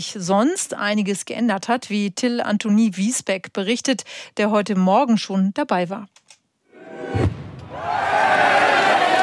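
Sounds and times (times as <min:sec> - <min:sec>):
speech: 0:00.0 - 0:06.2
crowd of many people shouting and cheering: 0:06.8 - 0:09.2
cannon shot starting the fishing day in Memmingen Germany: 0:07.1 - 0:07.8.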